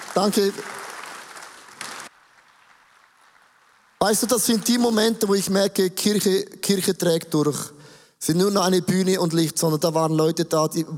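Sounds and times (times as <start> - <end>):
audience applause: 0.0 - 5.0
speech: 0.2 - 0.8, 4.0 - 10.9.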